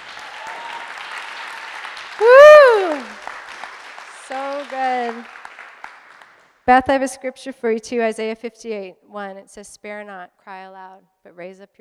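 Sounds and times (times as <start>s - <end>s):
crowd clapping: 0.0s - 6.9s
speech: 4.3s - 5.4s, 6.7s - 11.7s.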